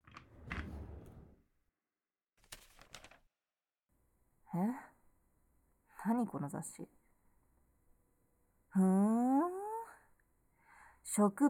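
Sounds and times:
desk drawer at a workplace sliding open: 0:00.0 - 0:01.4
speech: 0:04.6 - 0:04.9, 0:06.0 - 0:07.0, 0:08.8 - 0:09.2, 0:11.2 - 0:11.4.

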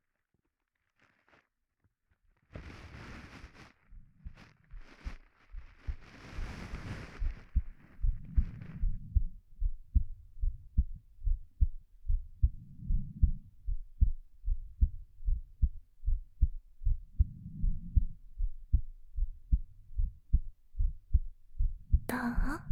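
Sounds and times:
soft rustling: 0:00.3 - 0:09.7
human heartbeat heard through chest: 0:03.9 - 0:22.7.

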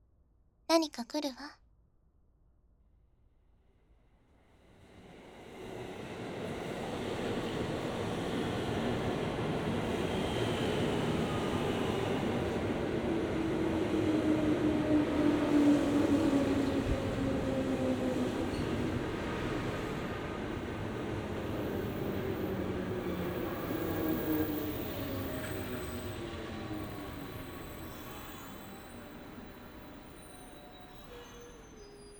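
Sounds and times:
speech: 0:00.7 - 0:01.6
train approaching on tracks: 0:04.7 - 0:32.1
faint tonal whines from train wheels and engine: 0:10.0 - 0:32.1.

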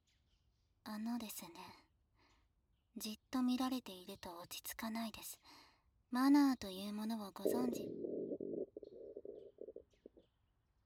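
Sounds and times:
speech: 0:00.9 - 0:01.8, 0:03.0 - 0:08.0
loud gurgling stomach growl: 0:07.4 - 0:10.1.

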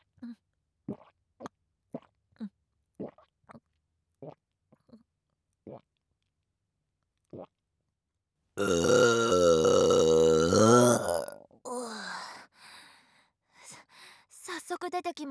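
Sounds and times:
speech: 0:08.6 - 0:09.1
person burping: 0:08.6 - 0:11.8.

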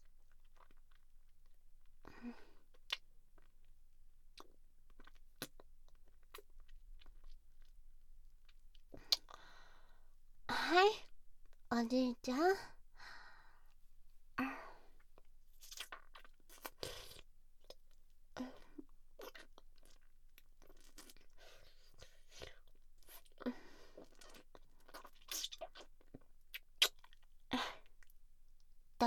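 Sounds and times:
quiet breaths and sighs: 0:00.0 - 0:03.5, 0:08.7 - 0:11.2, 0:12.5 - 0:15.3, 0:16.5 - 0:20.0, 0:20.8 - 0:25.1
person chewing and eating food: 0:00.3 - 0:01.6, 0:04.3 - 0:07.8, 0:15.1 - 0:17.9, 0:18.8 - 0:28.2
speech: 0:02.2 - 0:02.5, 0:11.8 - 0:12.8.

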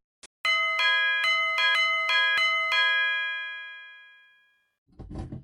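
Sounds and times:
electronic front door chime ringing: 0:00.5 - 0:04.7.

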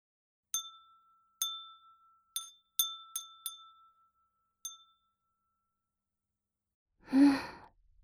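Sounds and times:
glass wind chime ringing: 0:00.5 - 0:05.8
soft breathy sigh: 0:07.0 - 0:07.8.

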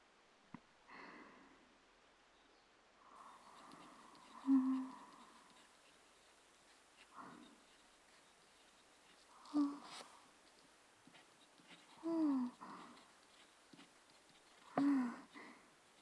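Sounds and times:
pen strokes on paper during handwriting practice: 0:03.4 - 0:15.9.

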